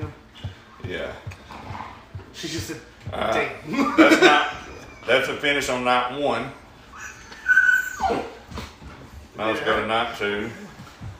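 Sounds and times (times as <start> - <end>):
speech: 0.9 - 1.4, 2.4 - 6.6, 9.4 - 10.7
dog whimpering: 6.8 - 8.7.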